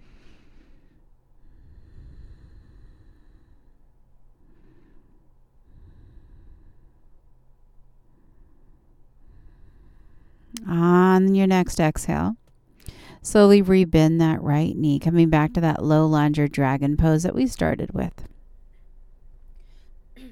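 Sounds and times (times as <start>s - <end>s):
deep slow breathing while holding a yoga stretch of the right hamstring: 0.0s - 10.6s, 18.5s - 20.2s
speech: 10.6s - 12.4s, 13.2s - 18.3s.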